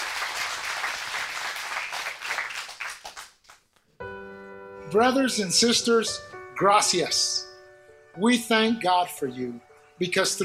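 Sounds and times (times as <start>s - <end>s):
crowd applauding: 0.0s - 3.7s
speech: 4.9s - 7.5s, 8.2s - 10.4s.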